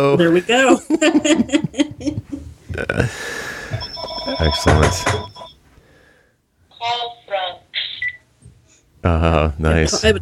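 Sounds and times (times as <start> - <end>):
speech: 0.0 - 2.2, 4.4 - 5.2, 9.0 - 10.2
faint hum: 0.0 - 10.2
Skype call alert bright electronic tone bursts: 3.7 - 5.6.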